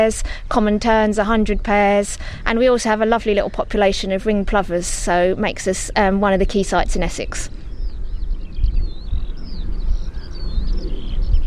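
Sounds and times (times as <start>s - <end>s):
speech: 0.0s - 7.6s
skylarks singing over a nature reserve in Essex: 0.0s - 11.4s
steady low wind rumble over a nature reserve in Essex: 0.0s - 11.4s.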